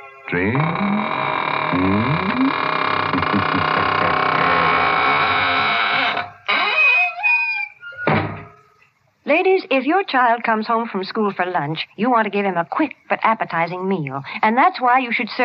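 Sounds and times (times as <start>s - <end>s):
speech: 0.3s - 4.1s, 9.8s - 15.4s
squeaking door closing: 0.4s - 8.7s
door thud: 8.0s - 8.6s.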